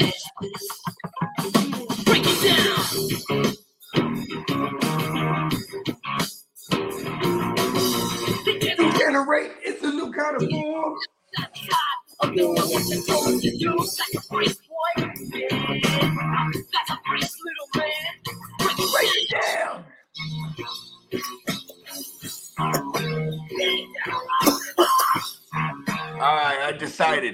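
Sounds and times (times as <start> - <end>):
vocal sounds: 0.0 - 3.4, 7.7 - 9.2, 10.0 - 26.7
music: 0.0 - 9.1, 10.4 - 27.3
person coughing and clearing throat in time with music: 24.4 - 25.4.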